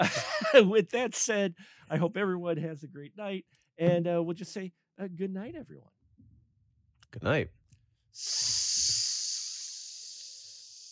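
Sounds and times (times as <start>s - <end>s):
laughter: 0.0s - 4.3s
speech: 0.0s - 6.0s, 7.1s - 7.6s, 8.2s - 8.6s
hiss of escaping steam: 8.2s - 10.9s.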